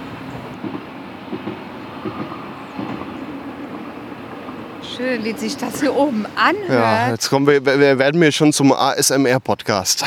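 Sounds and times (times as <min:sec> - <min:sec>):
train rumbling along a railway line: 0:00.0 - 0:07.0
speech: 0:02.0 - 0:02.4, 0:05.0 - 0:10.0.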